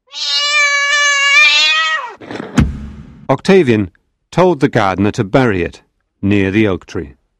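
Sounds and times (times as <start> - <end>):
cat yowling: 0.0 - 2.2
sharp crack: 2.2 - 3.5
speech: 3.3 - 7.2.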